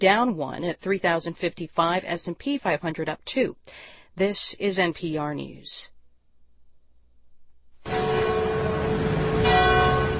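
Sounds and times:
speech: 0:00.0 - 0:05.9
church bells chiming in unison: 0:07.9 - 0:10.1.

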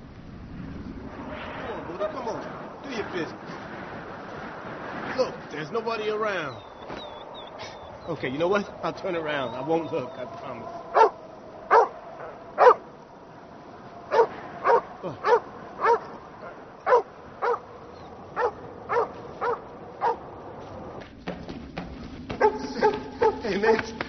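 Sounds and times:
speech: 0:02.0 - 0:03.6, 0:05.2 - 0:07.0, 0:08.0 - 0:11.0, 0:15.0 - 0:15.3
dog barking on a walk: 0:10.9 - 0:12.8, 0:14.1 - 0:16.2, 0:16.8 - 0:17.7, 0:18.3 - 0:20.2, 0:22.4 - 0:23.5.

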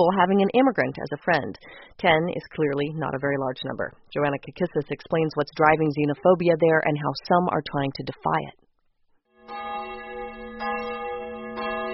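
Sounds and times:
speech: 0:00.0 - 0:08.6
church bells ringing at noon in Fod near Budapest Hungary: 0:09.4 - 0:11.9.

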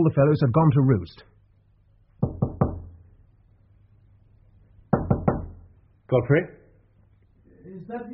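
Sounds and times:
speech: 0:00.0 - 0:01.3, 0:06.1 - 0:06.6, 0:07.7 - 0:08.1
knocking on a wooden hotel room door in London: 0:02.2 - 0:03.0, 0:04.9 - 0:05.7.

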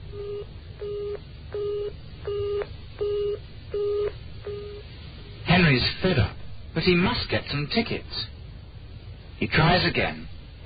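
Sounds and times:
faint telephone line hiss: 0:00.0 - 0:10.6
telephone line beeps after a wrong number is dialed: 0:00.1 - 0:04.8
speech: 0:05.8 - 0:08.4, 0:09.4 - 0:10.3.

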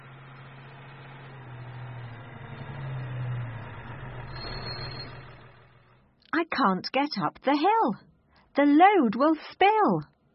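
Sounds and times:
truck engine idling: 0:00.0 - 0:06.2
speech: 0:06.4 - 0:10.1.

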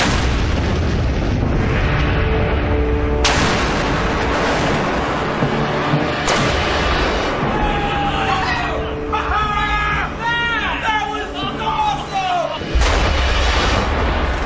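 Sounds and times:
explosive charge blasts launching heavy anvil: 0:00.0 - 0:08.0, 0:12.6 - 0:14.4
sustained heavy rumble: 0:00.0 - 0:08.1, 0:12.6 - 0:14.4
excited voices and whoops: 0:07.4 - 0:12.6.

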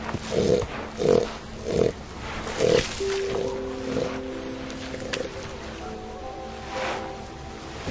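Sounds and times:
steady surf-like noise: 0:00.0 - 0:07.8
elephant seals moaning and bleating on a breeding beach in the Falkland Islands: 0:00.2 - 0:07.3.

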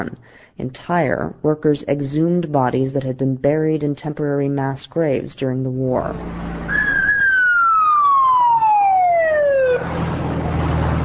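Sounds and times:
speech: 0:00.0 - 0:06.8
street noise: 0:06.0 - 0:11.0
ambulance siren wailing: 0:06.7 - 0:10.2.

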